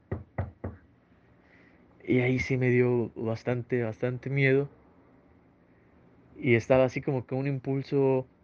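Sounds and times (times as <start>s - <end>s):
knocking on a door: 0.0s - 0.8s
speech: 2.1s - 4.8s, 6.4s - 8.3s.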